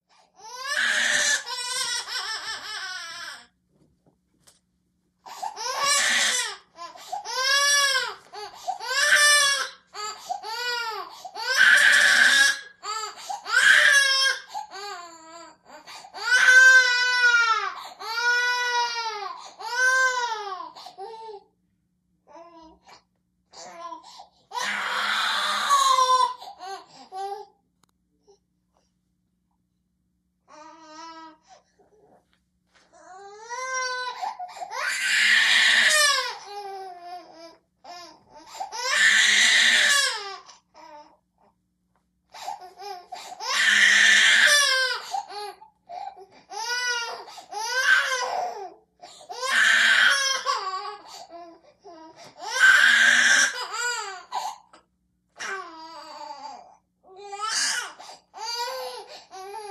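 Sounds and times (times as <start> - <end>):
twelve month old baby girl crying and screaming: 0.4 - 3.5, 5.3 - 21.2, 23.6 - 27.4, 33.0 - 40.5, 42.4 - 51.4, 52.0 - 54.6, 57.2 - 59.6.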